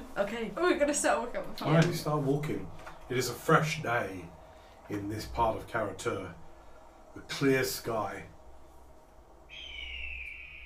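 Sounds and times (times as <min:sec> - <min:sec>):
faint low rumble: 0:00.0 - 0:10.6
speech: 0:00.2 - 0:06.4, 0:07.2 - 0:08.3
hawk cry: 0:09.4 - 0:10.6.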